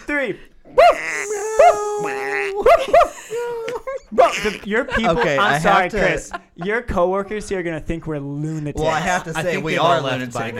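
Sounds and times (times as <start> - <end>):
speech: 0.1 - 10.5
several people imitating a dog barking: 0.7 - 4.7
laughter: 0.8 - 7.0.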